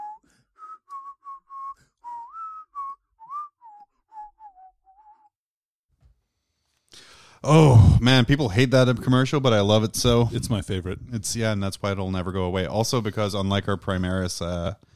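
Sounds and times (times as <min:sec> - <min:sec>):
man inward whistling a bouncy tune: 0:00.0 - 0:05.4
speech: 0:07.4 - 0:14.9.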